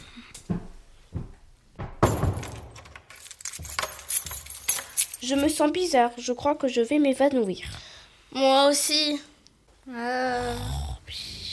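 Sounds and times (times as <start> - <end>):
house door thudding shut: 1.8 - 2.8
keys jangling: 2.5 - 5.6
speech: 5.3 - 11.2.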